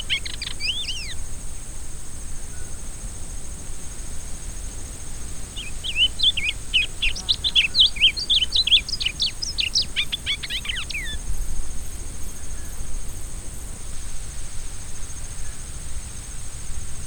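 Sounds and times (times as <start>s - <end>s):
Rusty-collared seedeater singing repicador song: 0.0s - 1.2s, 5.6s - 11.2s.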